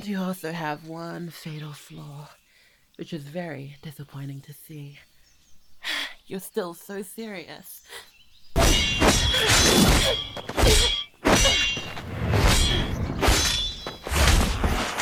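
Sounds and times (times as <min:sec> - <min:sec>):
speech: 0:00.0 - 0:02.4, 0:03.0 - 0:05.1, 0:06.3 - 0:11.0
swords clashing in a sword fight: 0:08.6 - 0:15.0.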